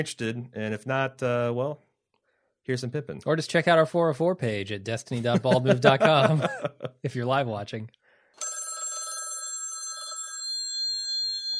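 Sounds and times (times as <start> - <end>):
speech: 0.0 - 1.9, 2.7 - 8.0
laughter: 5.1 - 7.2
telephone bell ringing: 8.4 - 11.5.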